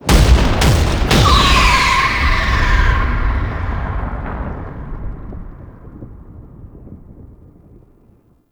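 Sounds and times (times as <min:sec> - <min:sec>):
cannon firing: 0:00.0 - 0:07.7.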